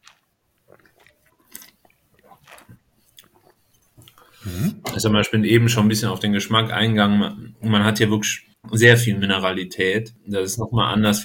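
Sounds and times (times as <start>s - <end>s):
sipping and slurping of young dry single-vineyard Riesling at a wine tasting: 0.0s - 5.0s
speech: 4.4s - 11.2s.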